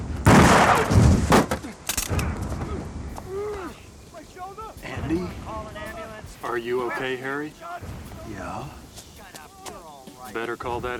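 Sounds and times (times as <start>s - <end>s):
gunshots during an arrest: 0.2s - 2.4s
speech: 6.4s - 8.8s, 10.3s - 10.9s.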